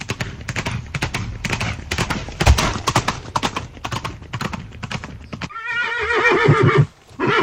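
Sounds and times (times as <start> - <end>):
horse hooves clip-clopping: 0.0 - 7.4
horse whinnying with a wavering pitch: 5.5 - 7.4.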